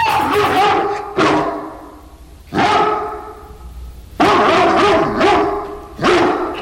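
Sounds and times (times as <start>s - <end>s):
dog barking in front of a horse: 0.0s - 3.5s, 4.2s - 6.6s.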